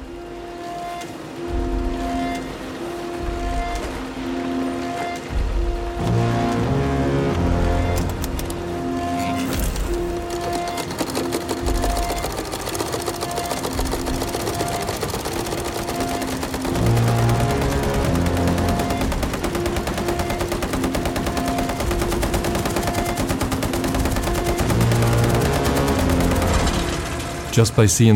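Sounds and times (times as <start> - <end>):
sustained musical tones: 0.0 - 28.1
sewing machine running: 9.4 - 27.6
speech: 27.6 - 28.1.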